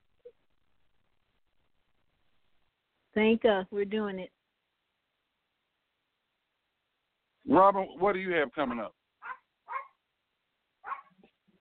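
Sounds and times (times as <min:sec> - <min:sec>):
speech: 0:03.2 - 0:04.4, 0:07.5 - 0:09.0
dog barking: 0:09.2 - 0:10.0, 0:10.8 - 0:11.4.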